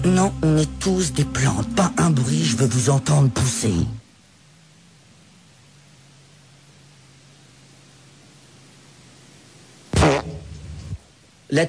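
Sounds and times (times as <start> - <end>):
speech: 0.1 - 4.0
fart from someone hiding behind a plant: 9.9 - 11.0.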